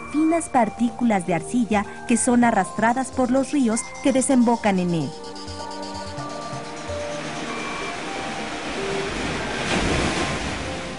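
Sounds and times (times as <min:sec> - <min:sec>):
speech: 0:00.1 - 0:05.2
ocean waves rolling and breaking in a roar of surf: 0:03.8 - 0:10.9.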